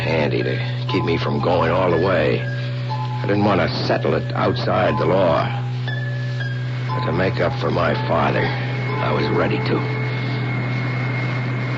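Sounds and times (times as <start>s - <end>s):
airplane engine droning in flight: 0.0s - 11.7s
speech: 0.1s - 5.6s, 7.0s - 10.0s.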